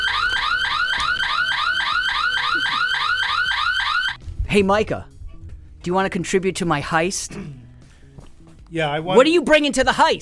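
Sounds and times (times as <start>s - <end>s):
burglar alarm warbling electronic tone: 0.0s - 4.2s
speech: 4.5s - 5.1s, 5.8s - 7.6s, 8.7s - 10.1s.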